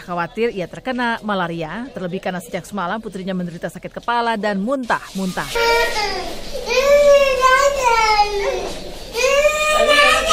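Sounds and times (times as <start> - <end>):
speech: 0.0 - 6.8
baby wailing: 5.5 - 10.3.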